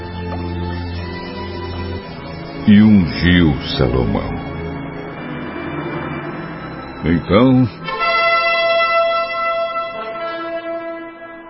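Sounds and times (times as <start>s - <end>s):
speech: 2.6s - 4.4s, 7.0s - 7.8s
bright brassy horn blast: 5.1s - 11.4s.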